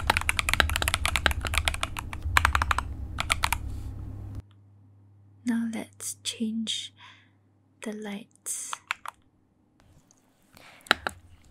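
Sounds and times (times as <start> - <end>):
computer keyboard key clicks: 0.0 - 3.6, 8.7 - 9.2
speech: 6.0 - 7.0, 7.8 - 8.8.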